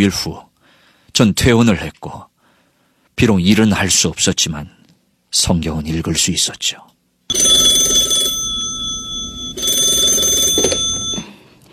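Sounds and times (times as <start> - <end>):
speech: 0.0 - 0.5, 1.2 - 2.3, 3.2 - 8.0
telephone ringing: 7.3 - 11.4.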